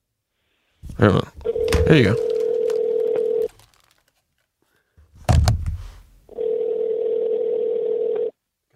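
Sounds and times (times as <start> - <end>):
speech: 1.0 - 2.3
phone line ringback tone on an outgoing call: 1.4 - 3.5, 6.3 - 8.4
handling thump: 5.2 - 6.0.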